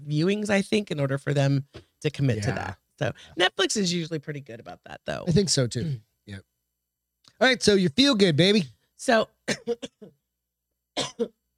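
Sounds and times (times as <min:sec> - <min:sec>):
speech: 0:00.1 - 0:06.5, 0:07.4 - 0:10.2, 0:11.0 - 0:11.4
harsh coughing: 0:09.5 - 0:10.2, 0:11.0 - 0:11.4.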